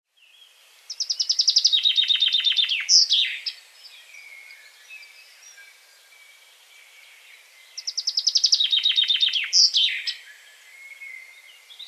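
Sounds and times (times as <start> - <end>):
Common chaffinch Fringilla coelebs singing: 0.2 - 11.8.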